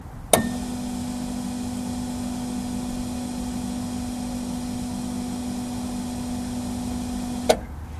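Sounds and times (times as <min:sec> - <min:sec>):
fuel pump: 0:00.3 - 0:07.7.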